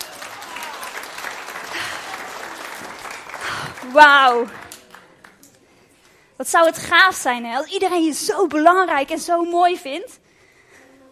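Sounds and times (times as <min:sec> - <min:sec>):
audience clapping: 0:00.0 - 0:05.4
speech: 0:03.9 - 0:04.6, 0:06.4 - 0:10.2.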